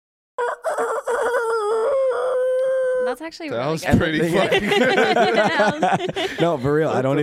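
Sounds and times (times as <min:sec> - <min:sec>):
speech: 0:00.4 - 0:02.3, 0:03.1 - 0:07.2
person imitating a rooster crow: 0:00.4 - 0:03.2
laughter: 0:04.0 - 0:07.2.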